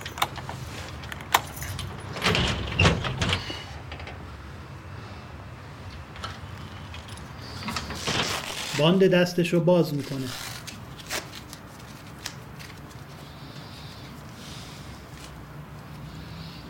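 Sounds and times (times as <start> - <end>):
keys jingling: 0.0 - 2.4
door pushed open with a brief rattling scrape: 0.0 - 4.2, 6.2 - 9.0
quiet low hum of the room: 0.0 - 16.6
speech: 8.8 - 10.5.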